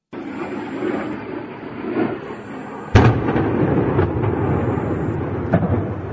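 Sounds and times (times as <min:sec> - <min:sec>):
low rumbling: 0:00.2 - 0:06.1
missile strike explosion in the city of Odessa: 0:02.9 - 0:06.1.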